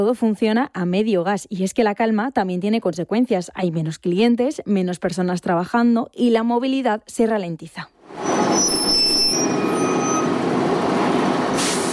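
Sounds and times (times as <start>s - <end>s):
speech: 0.0s - 8.8s
high city bus brake squeals: 8.2s - 10.5s
heavy city bus engine rumbling: 8.2s - 11.9s
city bus air brake hiss: 11.6s - 11.9s.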